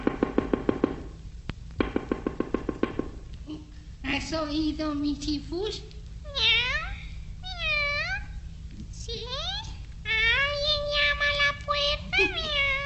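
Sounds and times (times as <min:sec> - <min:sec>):
faint low hum: 0:00.0 - 0:12.8
speech: 0:04.2 - 0:05.9
black cat meowing: 0:12.2 - 0:12.8.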